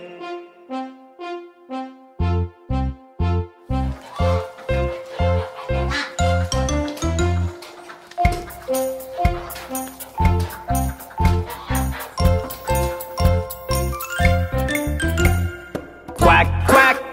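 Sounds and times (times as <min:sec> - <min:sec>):
bright music: 0:00.0 - 0:17.1
duck quacking: 0:03.7 - 0:14.6
thumping beat: 0:08.2 - 0:16.5.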